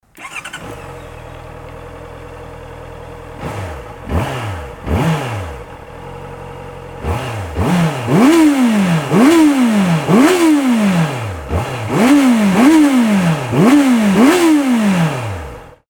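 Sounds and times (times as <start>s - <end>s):
Honda CB650F motorcycle engine: 0.0s - 15.8s.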